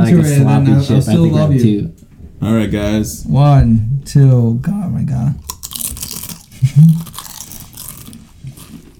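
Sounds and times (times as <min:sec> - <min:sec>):
speech: 0:00.1 - 0:05.6, 0:06.6 - 0:07.1
loud crunchy chewing into microphone: 0:05.4 - 0:08.9.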